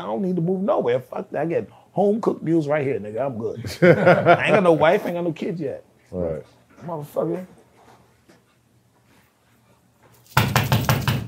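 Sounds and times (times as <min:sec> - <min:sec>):
speech: 0:00.0 - 0:07.6
laughter: 0:03.6 - 0:05.1
loud forceful knocks on a door: 0:10.3 - 0:11.2.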